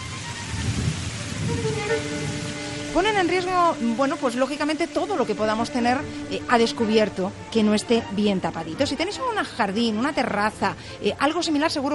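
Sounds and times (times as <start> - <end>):
low rolling thunder rumble of a summer thunderstorm: 0.0 - 6.5
steady heavy summer rain hissing and pattering: 0.0 - 11.9
speech: 1.5 - 11.9.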